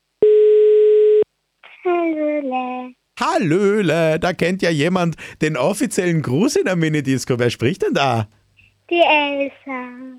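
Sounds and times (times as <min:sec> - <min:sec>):
telephone tone while a number is dialed: 0:00.2 - 0:01.2
speech: 0:01.8 - 0:10.1.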